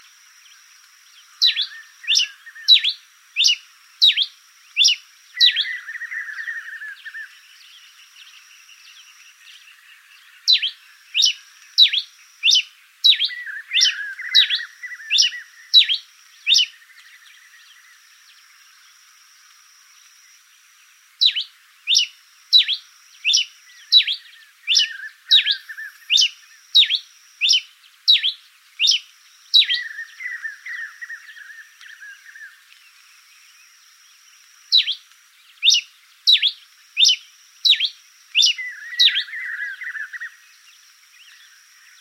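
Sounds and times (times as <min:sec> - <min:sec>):
Coryphospingus pileatus call: 0:01.4 - 0:07.4, 0:10.4 - 0:17.9, 0:21.2 - 0:32.6, 0:34.7 - 0:40.4.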